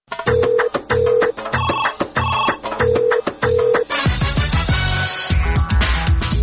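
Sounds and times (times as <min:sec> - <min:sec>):
dense burst of music: 0:00.1 - 0:06.4
telephone ringing with a bright melodic electronic ringtone: 0:00.2 - 0:03.9.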